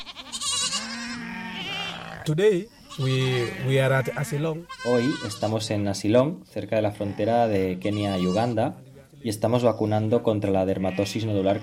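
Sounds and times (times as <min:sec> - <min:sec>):
herd of goats bleating during vaccination against lumpy skin disease in Asilong: 0:00.0 - 0:05.8, 0:06.8 - 0:08.8, 0:10.8 - 0:11.6
speech: 0:02.3 - 0:11.6.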